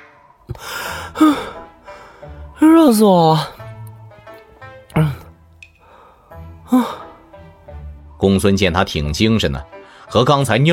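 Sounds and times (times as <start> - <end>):
heavy breathing after climbing out from under a thick quilt: 0.0 - 2.6, 5.0 - 7.2, 9.8 - 10.1
speech: 0.5 - 1.5, 2.8 - 3.5, 6.7 - 7.0, 8.2 - 10.7.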